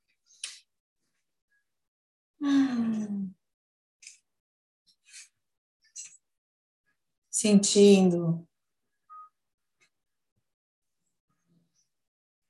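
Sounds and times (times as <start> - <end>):
deep breath let out as a long voiced sigh: 2.4 - 3.3
speech: 7.4 - 8.5.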